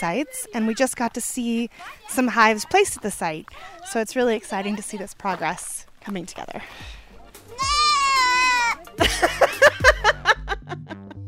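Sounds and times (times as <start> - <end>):
speech: 0.0 - 7.0
people chattering: 0.0 - 10.4
goat screaming: 7.5 - 9.0
people laughing: 7.5 - 11.2.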